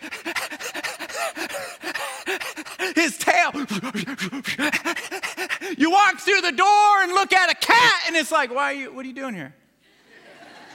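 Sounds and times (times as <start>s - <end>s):
person imitating a dog panting: 0.0s - 5.8s
speech: 2.9s - 4.8s, 5.8s - 9.6s
laughter: 9.9s - 10.7s.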